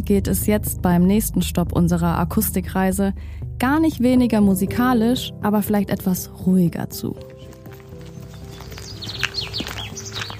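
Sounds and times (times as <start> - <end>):
low steady rumble: 0.0 - 5.1
speech: 0.0 - 7.4
several birds chirping and tweeting in the early morning: 7.2 - 10.3.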